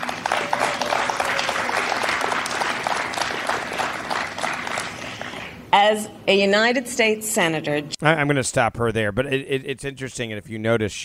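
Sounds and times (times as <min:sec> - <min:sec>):
crowd applauding: 0:00.0 - 0:05.6
woman cheering loudly: 0:00.3 - 0:02.0
speech: 0:05.7 - 0:11.0.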